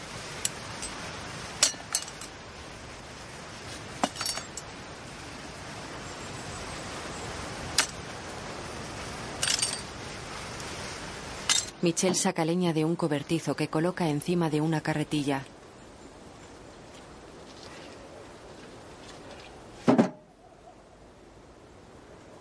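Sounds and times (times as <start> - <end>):
steady outdoor hiss: 0.0 - 22.3
broken greenhouse glass panes clinking and scraping in a vegetable garden: 1.6 - 2.3, 4.0 - 4.7, 9.4 - 9.9, 11.5 - 11.8
speech: 11.8 - 15.5.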